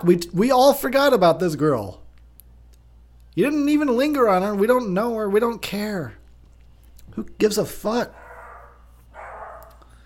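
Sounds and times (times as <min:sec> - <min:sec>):
speech: 0:00.0 - 0:02.0, 0:03.4 - 0:06.2, 0:07.2 - 0:08.2
steady low hum: 0:00.0 - 0:10.0
dog bark: 0:08.1 - 0:09.9.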